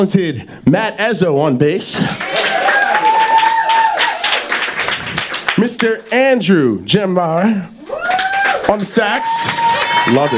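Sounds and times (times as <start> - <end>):
speech: 0.0 - 2.7, 5.6 - 7.8, 8.7 - 10.3
audience clapping and cheering for band members: 2.0 - 6.5, 7.8 - 10.3.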